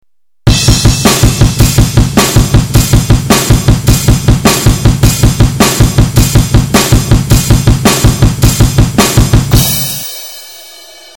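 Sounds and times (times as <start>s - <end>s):
digital drums double pedal: 0.0s - 11.1s.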